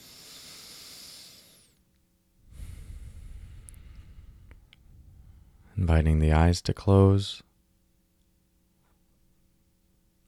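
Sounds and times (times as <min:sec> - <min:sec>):
slow deep breath: 0:00.0 - 0:01.8, 0:02.4 - 0:05.8
speech: 0:05.8 - 0:07.5.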